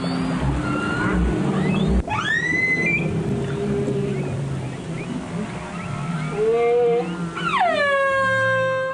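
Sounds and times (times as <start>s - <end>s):
humpback whale song: 0.0s - 8.9s
low underwater rumble: 0.5s - 7.4s.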